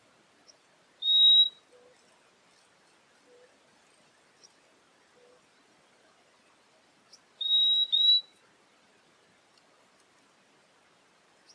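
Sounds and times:
purple-throated euphonia whistling two notes: 1.0s - 1.6s, 7.4s - 8.3s.

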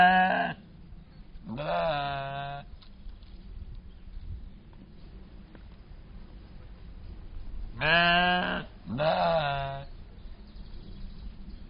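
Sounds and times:
captive Soay sheep bleating in a zoo in Germany: 0.0s - 0.6s, 1.5s - 2.7s, 7.8s - 9.8s
faint background noise: 0.0s - 11.6s.

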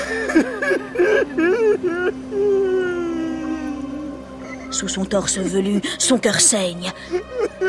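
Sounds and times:
man sobbing in broken, wavering cries: 0.0s - 4.8s, 6.9s - 7.6s
speech: 0.4s - 2.8s, 4.8s - 7.6s.

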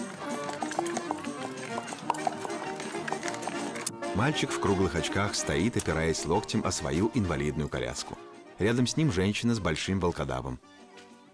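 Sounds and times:
hooves of a horse drawing a cart loaded with sacks along an embankment: 0.0s - 8.2s, 10.7s - 11.3s
speech: 4.2s - 10.8s.

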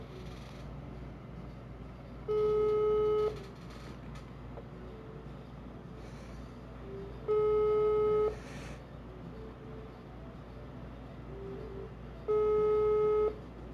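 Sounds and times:
telephone ringback tone while calling a friend: 2.3s - 3.4s, 7.3s - 8.4s, 11.4s - 13.6s.

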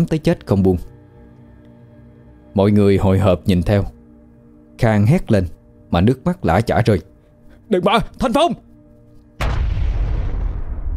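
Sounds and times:
speech: 0.0s - 0.9s, 2.6s - 4.0s, 4.8s - 7.1s, 7.7s - 8.7s
loud explosion boom: 9.4s - 10.9s.

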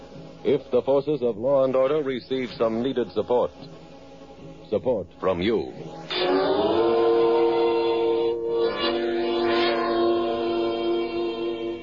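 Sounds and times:
speech: 0.4s - 3.8s, 4.4s - 6.7s
train horn blaring at a railroad station: 6.1s - 11.8s.

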